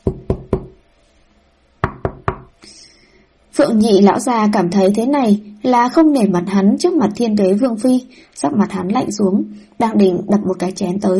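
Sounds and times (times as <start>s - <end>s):
knocking on a door: 0.0s - 0.8s, 1.8s - 2.5s
speech: 3.6s - 11.1s.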